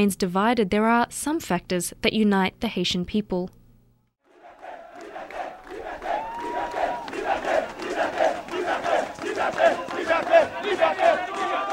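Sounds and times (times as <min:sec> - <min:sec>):
speech: 0:00.0 - 0:03.6
large crowd chanting: 0:04.2 - 0:11.7.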